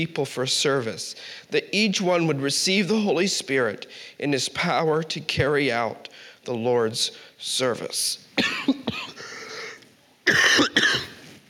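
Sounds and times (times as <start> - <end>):
speech: 0.0 - 9.0, 10.3 - 11.0
man clearing his throat in church: 8.4 - 9.2, 10.3 - 11.2
man coughing in church: 8.4 - 9.4, 10.3 - 11.2.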